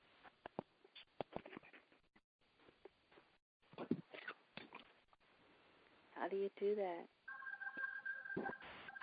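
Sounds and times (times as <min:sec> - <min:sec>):
speech: 0:06.2 - 0:07.2
phone keypad tone: 0:07.3 - 0:09.0
short beep: 0:07.3 - 0:09.0.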